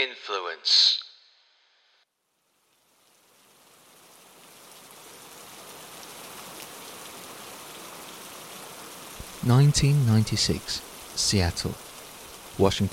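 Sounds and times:
speech: 0:00.0 - 0:01.0, 0:09.4 - 0:11.8, 0:12.6 - 0:12.9
steady rainfall outside an office window: 0:02.1 - 0:12.9.

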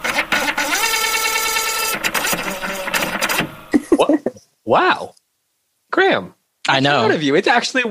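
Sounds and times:
printer motor whirring as a page feeds through: 0:00.0 - 0:03.7
speech: 0:04.7 - 0:05.2, 0:05.9 - 0:07.8.

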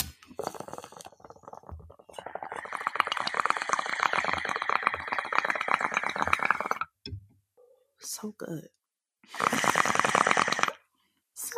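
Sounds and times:
water bubbling in a dab rig: 0:00.3 - 0:07.0, 0:09.4 - 0:10.8
speech: 0:08.2 - 0:09.7.

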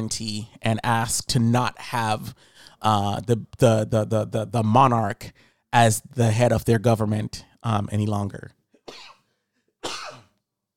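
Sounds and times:
speech: 0:00.0 - 0:09.0
harsh coughs: 0:08.8 - 0:10.4.

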